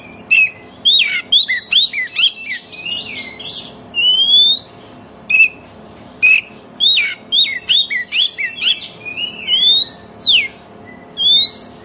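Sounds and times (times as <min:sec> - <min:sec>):
Oriental magpie-robin song: 0:00.0 - 0:11.8
faint background hum: 0:00.0 - 0:11.8.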